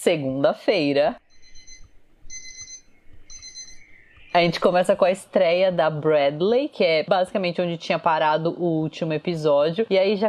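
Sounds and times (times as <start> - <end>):
speech: 0.0 - 1.2, 4.4 - 10.2
alarm clock ringing with high electronic beeping: 1.2 - 5.6.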